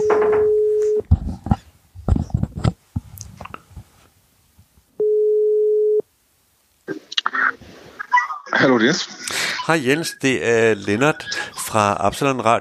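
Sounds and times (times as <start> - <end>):
outgoing phone call ringing tone: 0.0 - 1.0, 5.0 - 6.0
soft rustling: 0.0 - 4.9, 6.9 - 8.1
speech: 8.8 - 12.5.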